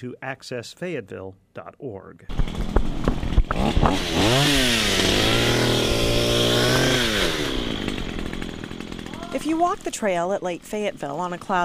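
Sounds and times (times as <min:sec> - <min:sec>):
speech: 0:00.0 - 0:07.5, 0:09.3 - 0:11.6
knocks and clatters: 0:02.3 - 0:04.0
chainsaw cutting through trees and brush: 0:02.3 - 0:11.6.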